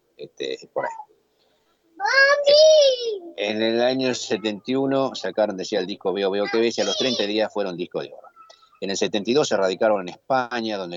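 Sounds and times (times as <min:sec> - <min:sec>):
adult talking: 0:00.2 - 0:01.1, 0:03.4 - 0:10.9
speech: 0:00.2 - 0:01.1, 0:02.0 - 0:10.9
child shouting: 0:02.0 - 0:03.4, 0:06.4 - 0:07.4.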